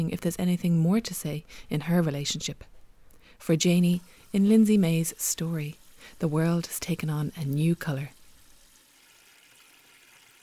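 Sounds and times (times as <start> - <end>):
speech: 0.0 - 2.7, 3.4 - 8.2
water running from a kitchen tap into a plastic basin: 3.6 - 10.4.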